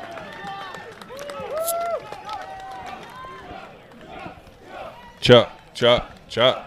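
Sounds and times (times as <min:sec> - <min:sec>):
large crowd murmuring and cheering: 0:00.0 - 0:06.6
crowd chanting a wrestler's name: 0:02.8 - 0:06.6.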